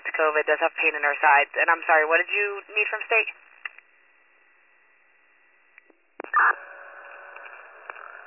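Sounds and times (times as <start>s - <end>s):
hiss of radio static: 0.0s - 3.8s, 6.2s - 8.2s
speech: 0.2s - 3.5s, 6.4s - 6.7s.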